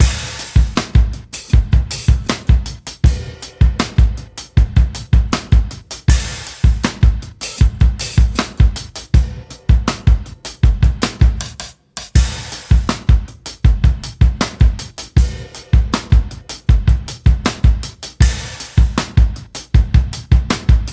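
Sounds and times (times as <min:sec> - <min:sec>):
music loop: 0:00.0 - 0:20.9.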